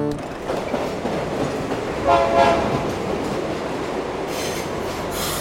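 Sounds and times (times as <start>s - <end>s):
train rolling along rails: 0.2s - 5.3s
train horn: 2.0s - 3.0s.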